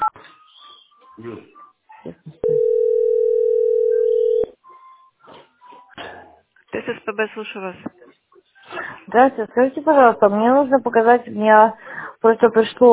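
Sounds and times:
speech: 0:01.2 - 0:02.4, 0:07.1 - 0:08.0, 0:09.1 - 0:12.9
telephone ringback tone while a call is being placed: 0:02.4 - 0:04.6.

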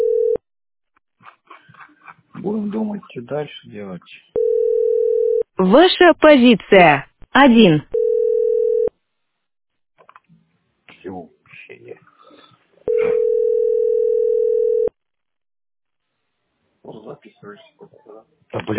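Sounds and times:
telephone line ringing tone while calling a company: 0:00.0 - 0:00.4, 0:04.4 - 0:05.5, 0:07.9 - 0:08.9, 0:12.9 - 0:14.9
speech: 0:02.4 - 0:04.3, 0:05.6 - 0:08.0, 0:17.4 - 0:18.7.

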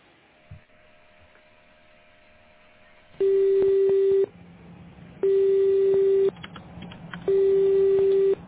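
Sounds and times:
faint phone line hiss and hum: 0:00.0 - 0:08.4
outgoing phone call ringback tone: 0:03.2 - 0:04.3, 0:05.2 - 0:06.3, 0:07.3 - 0:08.4.

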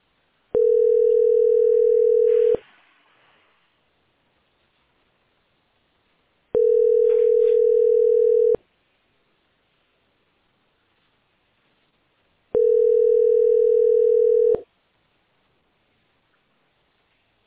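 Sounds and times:
telephone tone while placing a call: 0:00.6 - 0:02.6, 0:06.6 - 0:08.6, 0:12.5 - 0:14.7.

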